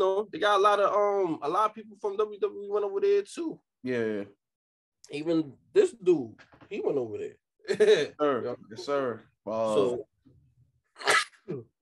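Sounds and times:
speech: 0.0s - 4.4s, 5.1s - 10.1s, 11.0s - 11.7s
sneeze: 11.0s - 11.5s.

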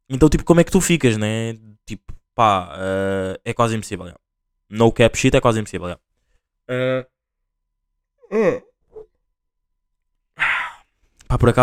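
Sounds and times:
speech: 0.1s - 6.1s, 6.7s - 7.1s, 8.3s - 8.7s, 11.3s - 11.6s
person yawning with a breathy exhale: 8.2s - 9.1s, 10.4s - 10.9s.

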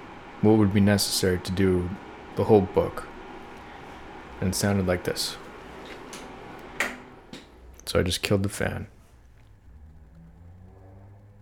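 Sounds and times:
speech: 0.4s - 3.1s, 4.4s - 5.4s, 7.9s - 9.0s
car passing outside: 9.7s - 11.3s.

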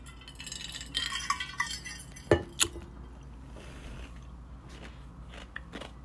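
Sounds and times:
ice clinking against a glass: 0.0s - 2.8s
person chewing ice cubes: 3.8s - 6.0s.

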